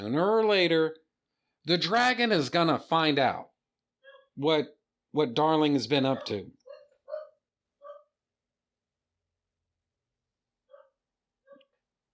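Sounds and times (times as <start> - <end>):
speech: 0.0 - 1.0, 1.6 - 3.5, 4.4 - 6.6
dog barking: 4.0 - 4.4, 6.0 - 8.2, 10.6 - 11.8.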